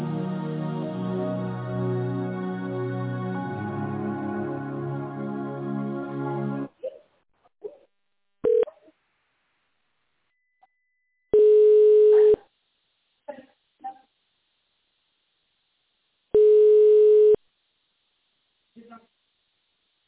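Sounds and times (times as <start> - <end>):
low telephone line tones while a call is transferred: 11.3 - 12.4, 16.4 - 17.4.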